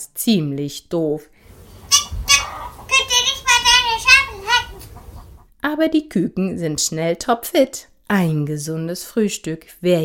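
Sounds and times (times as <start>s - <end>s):
speech: 0.0s - 1.4s, 5.6s - 10.0s
rooster clucking in short bursts: 1.5s - 5.5s
rooster crowing at dawn across a farmyard: 1.9s - 3.1s.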